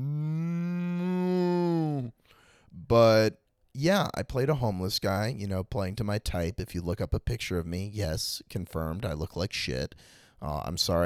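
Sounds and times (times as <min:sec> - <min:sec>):
person imitating a cow mooing: 0:00.0 - 0:02.2
speech: 0:02.9 - 0:11.0.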